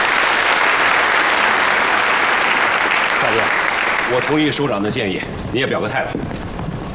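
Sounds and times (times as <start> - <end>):
audience applauding the start of a performance: 0.0 - 4.8
speech: 4.1 - 6.5.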